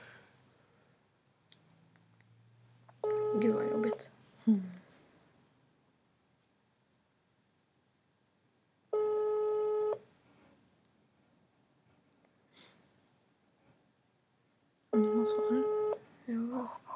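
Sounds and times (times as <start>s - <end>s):
telephone ringback tone on an outgoing call: 3.0s - 4.0s, 9.0s - 10.0s, 15.0s - 16.0s
speech: 3.4s - 4.7s.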